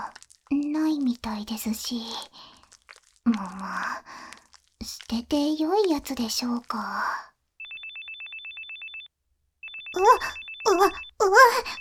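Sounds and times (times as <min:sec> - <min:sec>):
speech: 0:00.8 - 0:02.5, 0:03.3 - 0:04.2, 0:04.9 - 0:07.3, 0:10.0 - 0:11.8
phone ringing with a rapid electronic trill: 0:07.6 - 0:11.8.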